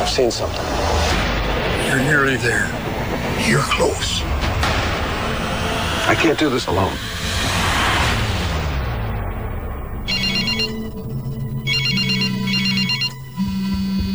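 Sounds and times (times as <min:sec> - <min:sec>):
loud swelling noise: 0:00.0 - 0:12.1
steady low hum: 0:00.0 - 0:13.6
speech: 0:00.1 - 0:00.8, 0:01.9 - 0:04.3, 0:06.1 - 0:07.1
telephone warbling electronic ring: 0:10.1 - 0:14.1.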